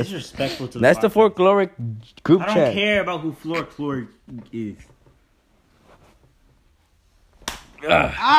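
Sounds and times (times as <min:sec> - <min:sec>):
speech: 0:00.0 - 0:04.9, 0:07.8 - 0:08.3
hand slapping a person: 0:07.4 - 0:07.8
person moaning rising in pitch: 0:07.8 - 0:08.3.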